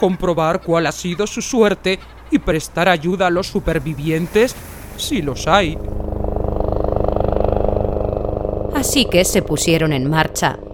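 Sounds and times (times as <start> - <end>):
speech: 0.0 - 6.0, 8.8 - 10.7
rescue helicopter engine droning: 0.0 - 10.7.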